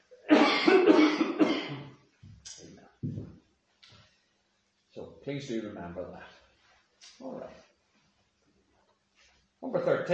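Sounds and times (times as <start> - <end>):
harsh rasping cough from a tickling throat: 0.2 - 2.0
speech: 5.3 - 6.4, 7.2 - 7.6, 9.6 - 10.1.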